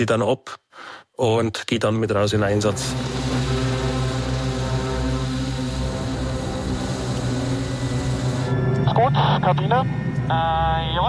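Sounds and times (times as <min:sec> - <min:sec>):
speech: 0:00.0 - 0:03.6, 0:09.0 - 0:11.0
rescue helicopter turbine engine and rotor running: 0:02.8 - 0:08.8.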